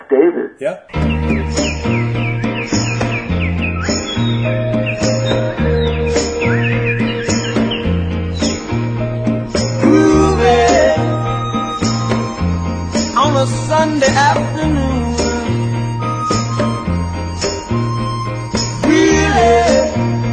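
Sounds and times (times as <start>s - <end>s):
speech: 0.1s - 2.1s
steady grooving band: 0.9s - 20.3s
thumping bass line: 0.9s - 20.3s
high warbling bird-like whistles and chirps imitated by a musician: 1.0s - 8.8s.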